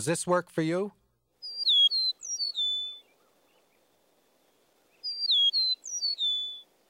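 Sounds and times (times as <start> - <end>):
speech: 0.0 - 1.0
eastern meadowlark singing flute-like descending whistles: 1.4 - 3.9, 4.8 - 6.8.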